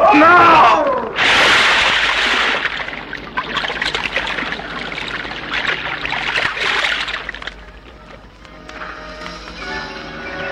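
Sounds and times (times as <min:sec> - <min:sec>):
speech: 0:00.1 - 0:00.8
river water rushing and splashing: 0:01.2 - 0:08.3.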